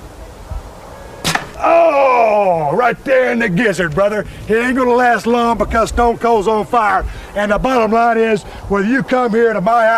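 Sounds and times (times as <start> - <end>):
arrow striking a target: 1.2 - 1.7
speech: 2.7 - 9.9.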